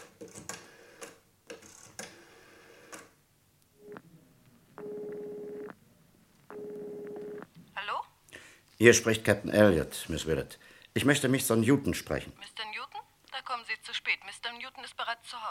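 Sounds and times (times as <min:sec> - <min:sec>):
long even buzzing telephone tones: 0:03.8 - 0:04.1, 0:04.8 - 0:05.8, 0:06.5 - 0:07.5
speech: 0:08.8 - 0:12.6.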